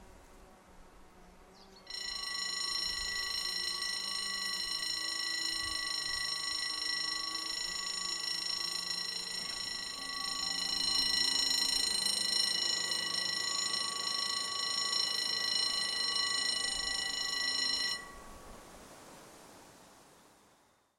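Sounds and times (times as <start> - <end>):
level crossing: 1.9 - 18.3.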